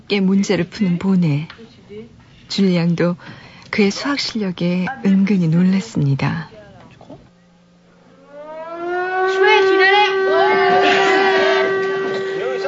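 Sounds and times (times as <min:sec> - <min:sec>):
speech: 0:00.1 - 0:01.7, 0:02.5 - 0:06.5
alarm siren wailing: 0:07.6 - 0:12.6.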